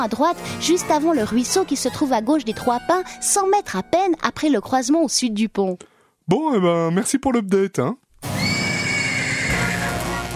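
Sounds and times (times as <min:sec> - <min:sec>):
speech: 0:00.0 - 0:08.3
horse neighing: 0:08.4 - 0:10.2.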